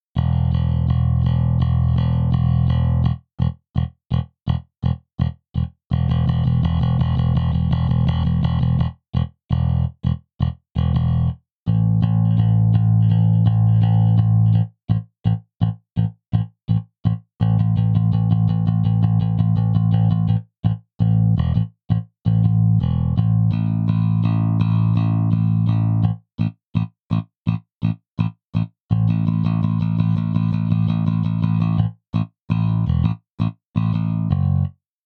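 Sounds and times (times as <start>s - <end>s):
modern bass guitar played with a pick at default setting: 0.0s - 35.0s.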